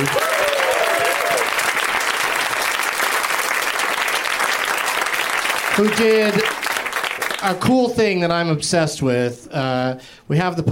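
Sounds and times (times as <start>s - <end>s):
audience applause for a guest being introduced: 0.0s - 7.6s
speech: 5.8s - 6.6s, 7.4s - 10.7s.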